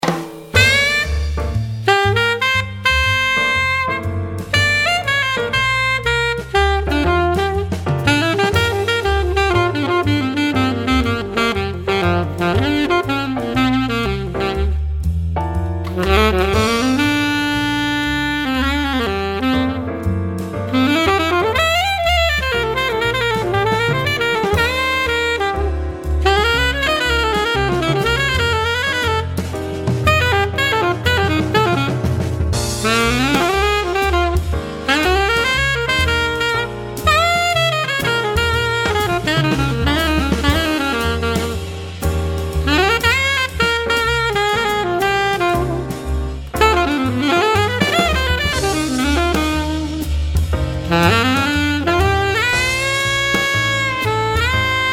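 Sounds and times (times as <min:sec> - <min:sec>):
alto saxophone jazz solo: 0:00.4 - 0:54.9.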